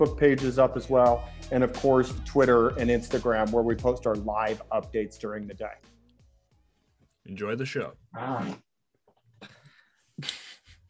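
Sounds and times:
speech: 0.0 - 5.9, 7.2 - 8.7, 10.2 - 10.4
buzzy fart with a low rumbling burst: 8.1 - 8.7.

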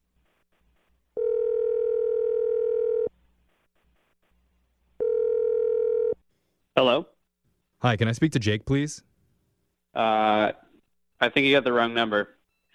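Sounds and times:
telephone dial tone: 1.2 - 3.1, 5.0 - 6.2
speech: 6.8 - 7.1, 7.8 - 9.1, 9.9 - 10.6, 11.2 - 12.4.

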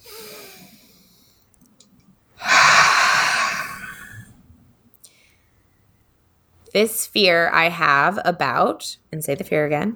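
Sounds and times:
deep breath taken during a tapping exercise: 2.4 - 4.3
speech: 6.8 - 9.9.

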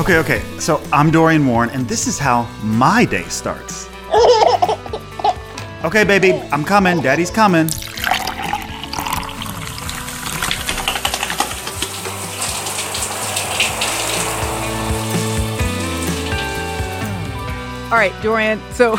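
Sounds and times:
speech: 0.0 - 4.7, 5.8 - 7.8, 17.9 - 18.9
water running from a tap in a house: 7.4 - 18.9.

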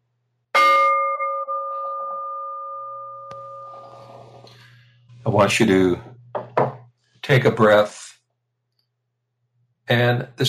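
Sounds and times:
meditation bell struck and ringing: 0.6 - 4.4
speech: 5.2 - 6.1, 7.3 - 8.1, 9.9 - 10.4.

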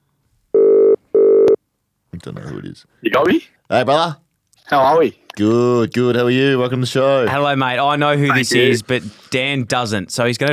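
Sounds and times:
telephone ringing for incoming call: 0.6 - 1.6
speech: 2.2 - 10.5.

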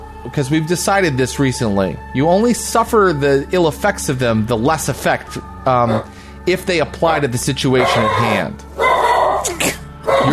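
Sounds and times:
speech: 0.2 - 8.7
dog barking: 5.9 - 6.1, 7.8 - 10.3.

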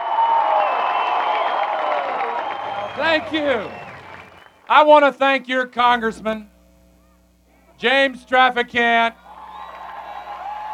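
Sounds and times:
crowd at a US presidential campaign rally cheering and applauding: 0.0 - 4.7, 9.2 - 10.7
speech: 3.0 - 3.8, 4.7 - 6.5, 7.8 - 9.2.

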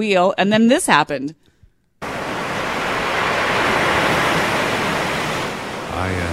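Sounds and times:
speech: 0.0 - 1.4, 6.0 - 6.3
ocean waves surf: 2.0 - 6.3.

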